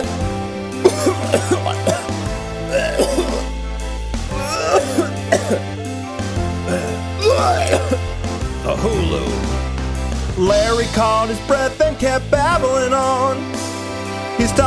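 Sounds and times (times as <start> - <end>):
steady low musical drone: 0.0 - 14.5
voice imitating violent strangled coughing: 0.8 - 3.6, 4.3 - 5.8, 6.6 - 9.6
speech: 10.9 - 13.6.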